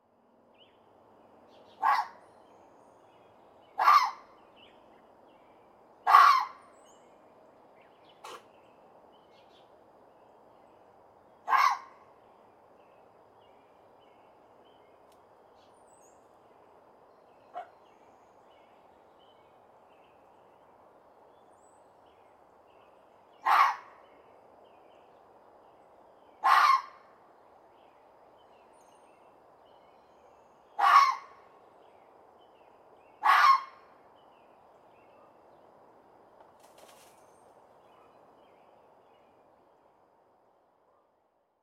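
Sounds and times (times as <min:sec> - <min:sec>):
fox barking: 0:01.8 - 0:02.2, 0:03.8 - 0:04.2, 0:06.0 - 0:06.6, 0:11.5 - 0:12.0, 0:17.5 - 0:17.7, 0:23.4 - 0:23.9, 0:26.4 - 0:27.0, 0:30.8 - 0:31.4, 0:33.2 - 0:33.8.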